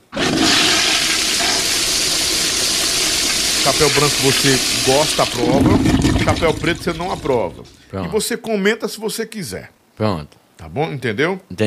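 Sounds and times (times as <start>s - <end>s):
toilet flushing: 0.0s - 7.8s
speech: 3.7s - 11.6s.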